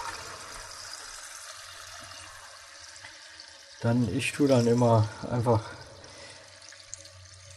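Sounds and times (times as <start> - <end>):
cold tap water running over cooked food: 0.0 - 7.5
speech: 3.8 - 5.8.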